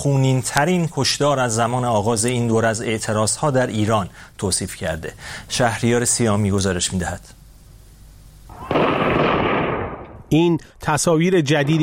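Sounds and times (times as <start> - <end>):
speech: 0.0 - 7.4, 10.3 - 11.8
rapid continuous gunfire in Zahedan Iran on a day of protest: 8.5 - 10.2.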